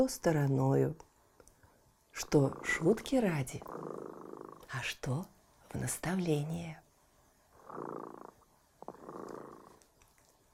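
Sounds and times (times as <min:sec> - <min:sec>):
speech: 0:00.0 - 0:01.1, 0:02.2 - 0:06.8, 0:07.7 - 0:08.4
cat purring: 0:02.2 - 0:06.6, 0:07.4 - 0:10.5.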